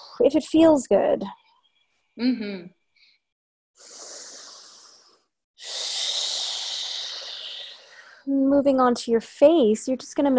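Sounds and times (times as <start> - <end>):
speech: 0.2 - 1.4, 2.2 - 2.8, 8.3 - 10.3
deep breathing in through nose and out through mouth: 3.8 - 8.3.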